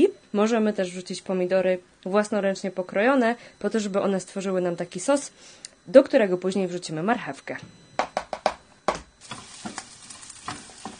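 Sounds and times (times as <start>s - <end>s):
speech: 0.0s - 8.1s
garlic and onion frying in a pan: 9.2s - 10.9s
utensil stirring with clicks and scrapes in a pan: 9.2s - 10.9s.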